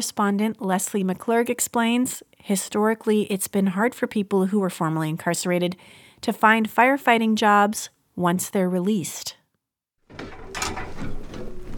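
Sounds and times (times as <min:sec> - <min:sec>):
speech: 0:00.0 - 0:09.4, 0:10.1 - 0:10.8
fire engine rear door rolled down: 0:10.1 - 0:11.7.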